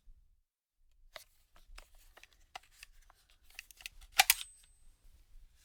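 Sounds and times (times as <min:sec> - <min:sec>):
magazine handling: 0:01.2 - 0:04.9.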